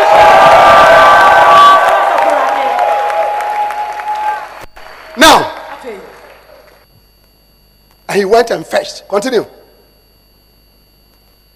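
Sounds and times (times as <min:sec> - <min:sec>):
church congregation cheering and shouting: 0:00.0 - 0:05.8
church congregation clapping: 0:00.0 - 0:06.9
speech: 0:08.2 - 0:09.6.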